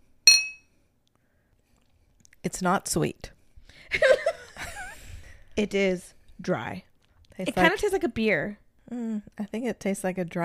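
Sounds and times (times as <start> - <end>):
two glasses of cider clinking in a toast: 0.3 - 0.6
speech: 2.4 - 4.2, 5.6 - 10.4.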